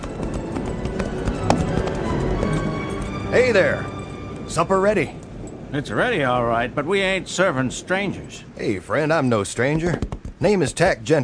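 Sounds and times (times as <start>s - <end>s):
horse hooves clip-clopping toward a house: 0.0s - 3.6s, 9.1s - 11.0s
dense wash: 0.0s - 11.2s
speech: 3.4s - 3.9s, 4.5s - 11.2s.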